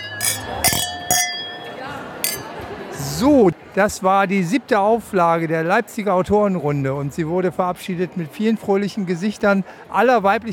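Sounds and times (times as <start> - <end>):
glass clinking: 0.0 - 2.6
speech: 3.2 - 10.5.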